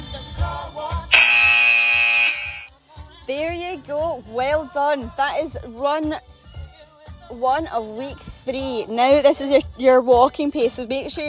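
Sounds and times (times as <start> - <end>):
workout timer buzzer: 1.1 - 2.7
speech: 4.2 - 6.4, 7.3 - 11.2.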